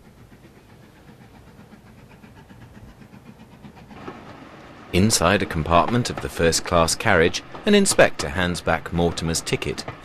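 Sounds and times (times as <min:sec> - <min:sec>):
two-carriage train rolling on tracks between hills: 0:00.0 - 0:10.0
train wheels clattering over rail joints: 0:03.8 - 0:10.0
speech: 0:04.9 - 0:10.0.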